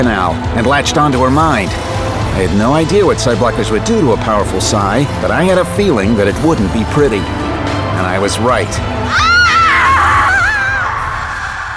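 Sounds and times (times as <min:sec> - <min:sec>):
speech: 0:00.0 - 0:09.3
woman screaming in pain: 0:09.1 - 0:11.7.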